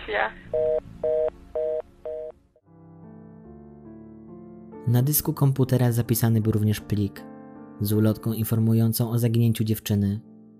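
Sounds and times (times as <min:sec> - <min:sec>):
speech: 0:00.1 - 0:01.2, 0:04.9 - 0:10.3
steady electronic telephone ringing tone: 0:00.5 - 0:02.4.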